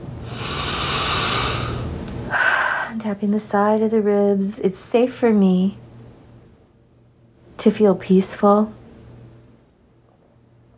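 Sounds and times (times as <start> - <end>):
long deep breath during a guided tapping exercise: 0.2 - 3.0
speech: 3.0 - 5.8, 7.6 - 8.8.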